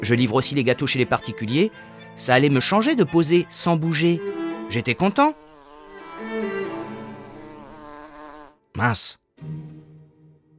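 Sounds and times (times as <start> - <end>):
speech: 0.0 - 5.4, 8.8 - 9.6
large fly buzzing in a painter's studio: 3.9 - 8.6.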